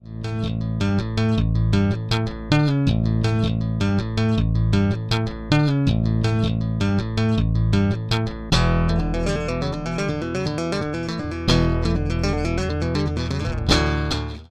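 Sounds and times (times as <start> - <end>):
bass: 0.0 - 14.4.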